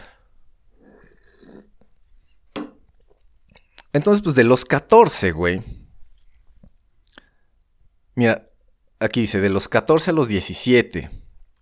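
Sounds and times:
slurping sip of coffee: 0.7 - 2.3
cup set down: 2.5 - 2.8
speech: 3.9 - 5.8, 8.2 - 11.2.

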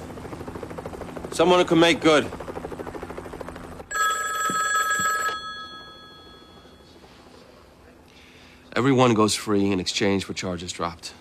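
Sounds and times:
speech: 1.3 - 2.4, 8.8 - 11.1
telephone ringing with electric bell: 3.9 - 7.0.

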